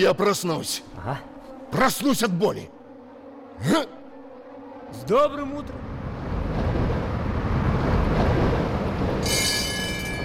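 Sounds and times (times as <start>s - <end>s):
speech: 0.0s - 2.8s, 3.6s - 4.0s, 4.9s - 5.9s
tram wheels rumbling on rails: 5.6s - 10.2s.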